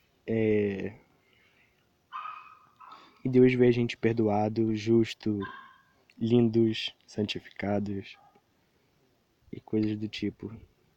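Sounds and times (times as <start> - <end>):
dogs barking with a yelping edge: 2.1 - 3.1, 5.4 - 6.0
speech: 3.2 - 5.6, 6.2 - 8.2, 9.5 - 10.7.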